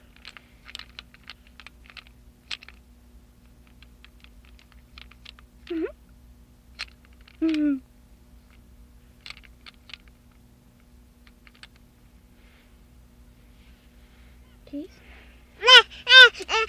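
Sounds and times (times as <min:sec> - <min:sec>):
short baby vocalizations: 0:15.6 - 0:16.6.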